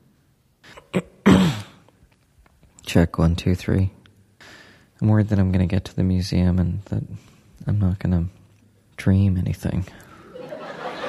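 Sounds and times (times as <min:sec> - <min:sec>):
man coughing: 0:00.6 - 0:01.9
speech: 0:02.9 - 0:04.0, 0:05.0 - 0:08.4, 0:09.0 - 0:10.1
laughter: 0:10.2 - 0:11.0.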